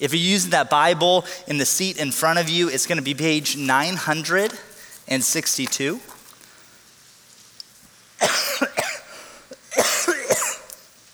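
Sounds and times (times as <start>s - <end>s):
speech: 0.0s - 6.2s
person coughing: 8.2s - 10.8s.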